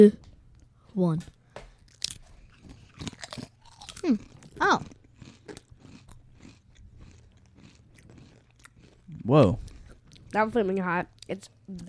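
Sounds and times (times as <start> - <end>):
speech: 0.0 - 0.2, 1.0 - 1.4, 4.0 - 5.0, 9.2 - 9.6, 10.3 - 11.8
crunching Tangy Ketchup & Hot Mustard Doritos chips: 1.9 - 10.4.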